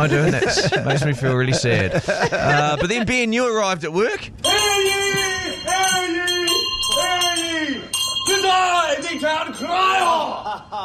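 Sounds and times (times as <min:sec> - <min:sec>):
laughter: 0:00.0 - 0:03.3, 0:10.0 - 0:10.8
speech: 0:00.0 - 0:06.2, 0:08.4 - 0:10.8
voice imitating a ringing bell: 0:04.4 - 0:10.8.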